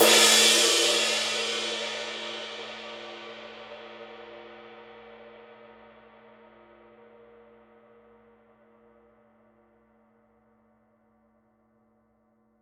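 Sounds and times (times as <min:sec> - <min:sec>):
Paiste Twenty Master dark crisp ride cymbal: 0:00.0 - 0:03.8.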